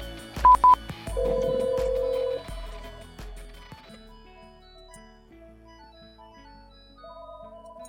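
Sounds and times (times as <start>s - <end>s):
phone ringing with electronic tones: 0.5s - 2.5s.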